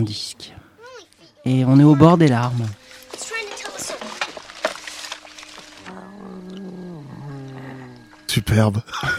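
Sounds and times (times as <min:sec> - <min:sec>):
speech: 0:00.0 - 0:00.6, 0:01.4 - 0:02.8, 0:08.4 - 0:09.1
alien creature growls and snarls made from cat sounds: 0:05.8 - 0:08.2.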